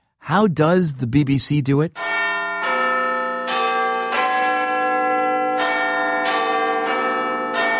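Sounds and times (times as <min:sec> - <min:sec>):
speech: 0:00.3 - 0:02.1
Big Ben clock tower bells chiming the time: 0:02.0 - 0:07.7.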